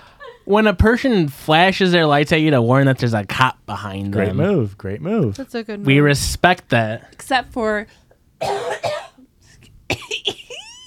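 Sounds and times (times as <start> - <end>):
speech: 0.5 - 8.9
person coughing: 8.4 - 9.3, 9.9 - 10.7.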